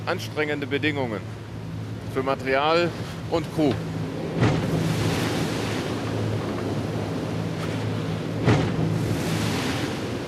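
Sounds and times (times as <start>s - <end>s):
speech: 0.0s - 1.4s, 2.1s - 4.5s
rushing water: 0.0s - 10.2s
constant roaring wind: 1.2s - 10.2s
sailboat bow slamming onto waves: 2.9s - 10.2s.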